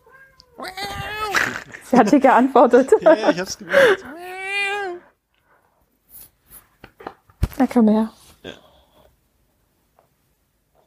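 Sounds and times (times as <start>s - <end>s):
cat giving a drawn-out whiny meow: 0.0s - 1.4s
laughter: 1.3s - 4.3s
speech: 1.7s - 4.4s, 7.6s - 8.7s.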